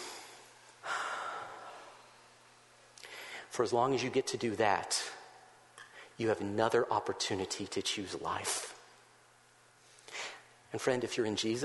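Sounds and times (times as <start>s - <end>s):
deep breath: 0.0s - 2.0s, 3.0s - 3.5s
faint low hum: 0.0s - 11.6s
speech: 3.6s - 5.2s, 6.2s - 8.7s, 10.7s - 11.6s.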